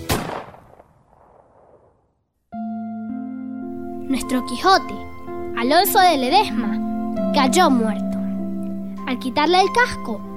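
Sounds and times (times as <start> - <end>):
gunshot: 0.0 - 2.1
steady tonal music: 2.6 - 10.3
speech: 4.1 - 8.1, 9.1 - 10.3.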